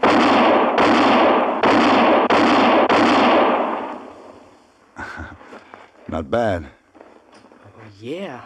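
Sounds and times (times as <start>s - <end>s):
gunshots in a quick-draw shooting contest: 0.0s - 4.5s
speech: 6.1s - 6.8s, 8.0s - 8.4s.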